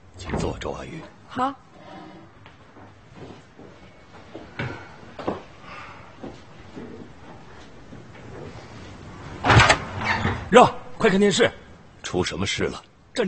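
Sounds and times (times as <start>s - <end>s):
speech: 0.5s - 1.7s, 10.5s - 13.2s
faint clunks and rustles indoors at home: 2.4s - 5.6s, 6.2s - 10.5s
door pulled shut indoors at home: 9.4s - 10.5s.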